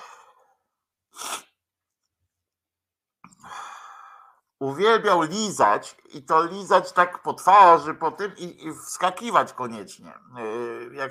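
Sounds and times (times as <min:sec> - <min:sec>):
person sneezing: 0:01.1 - 0:01.6
sharp inhale before sneeze: 0:03.3 - 0:04.4
speech: 0:04.6 - 0:11.1.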